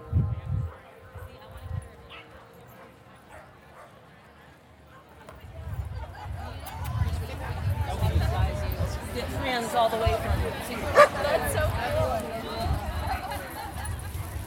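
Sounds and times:
murmuring voices of outdoor crowd at a dog event: 0.0s - 14.4s
corgis, huskies, dachshunds, bulldogs and mutts barking at a dog event: 2.0s - 4.0s, 10.9s - 11.4s.

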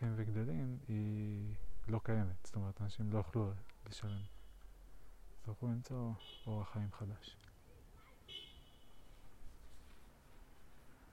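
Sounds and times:
speech: 0.1s - 4.4s, 5.4s - 7.4s
short car horn beep: 4.0s - 4.7s, 6.1s - 7.1s, 8.3s - 9.1s.

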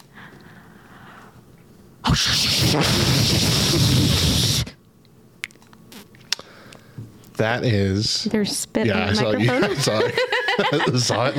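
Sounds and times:
speech: 2.1s - 4.6s, 7.4s - 11.3s
voice imitating a toilet flushing: 2.1s - 4.8s
laughter: 9.0s - 11.3s.

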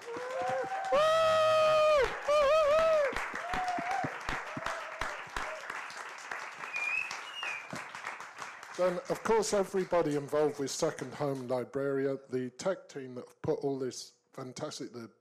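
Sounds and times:
audience clapping: 0.0s - 11.6s
audience whoops and whistles: 0.1s - 4.8s, 6.6s - 7.8s
speech: 8.8s - 15.2s.

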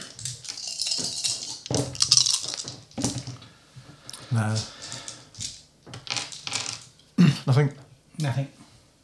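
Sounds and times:
dice clattering across a hard tabletop: 0.2s - 3.3s, 4.6s - 6.9s
speech: 4.3s - 4.8s, 7.5s - 8.6s.

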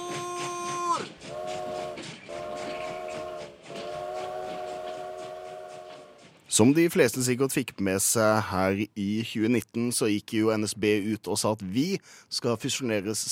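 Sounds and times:
train whistle blowing: 0.0s - 6.3s
rumble and clatter of a moving train: 0.0s - 7.4s
speech: 6.6s - 13.3s.

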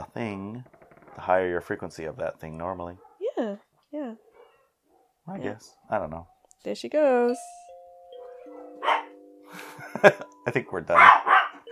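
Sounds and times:
speech: 0.2s - 3.6s, 5.4s - 7.6s, 10.0s - 11.7s
dog barking: 2.9s - 3.2s, 4.2s - 6.4s, 8.6s - 9.1s, 10.9s - 11.7s
laughter: 9.5s - 11.0s.

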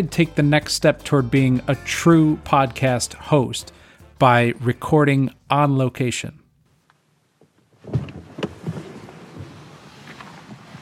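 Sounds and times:
speech: 0.0s - 6.4s
soft shuffling of someone stepping out of a car: 6.7s - 10.7s
car door opening and thumping shut: 7.7s - 10.7s.

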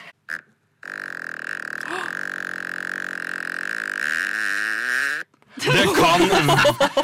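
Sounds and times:
long drawn-out reedy fart: 0.3s - 5.4s
laughter: 5.6s - 7.0s.

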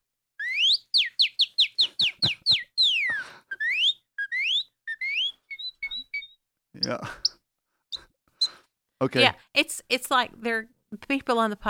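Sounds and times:
person whistling an imitation of a northern cardinal's song: 0.4s - 8.6s
speech: 6.8s - 7.3s, 9.0s - 11.6s.

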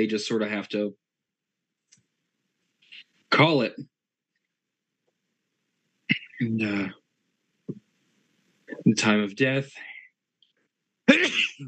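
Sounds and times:
speech: 0.0s - 1.0s, 3.3s - 3.9s, 6.4s - 7.0s, 8.7s - 9.9s, 11.1s - 11.6s
person sneezing: 11.1s - 11.6s.

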